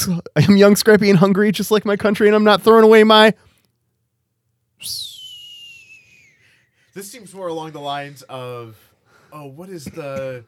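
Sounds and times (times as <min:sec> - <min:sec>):
speech: 0:00.0 - 0:03.5, 0:04.8 - 0:05.1, 0:07.0 - 0:10.4
person whistling a sliding note: 0:04.8 - 0:06.8.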